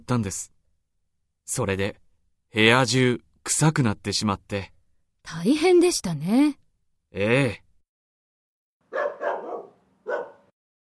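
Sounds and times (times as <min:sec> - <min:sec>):
speech: 0:00.1 - 0:00.6, 0:01.5 - 0:07.6
dog barking from the floor above in an apartment building: 0:08.9 - 0:10.5.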